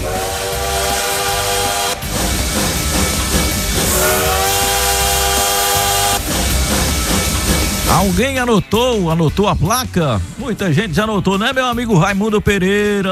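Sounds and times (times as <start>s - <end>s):
train rushing past: 0.0s - 9.1s
speech: 8.0s - 13.1s.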